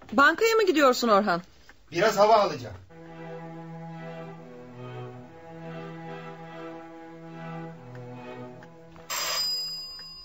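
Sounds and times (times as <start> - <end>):
speech: 0.1 - 2.8
continuous low tonal hum: 1.8 - 10.2
electric doorbell ringing: 9.1 - 10.2.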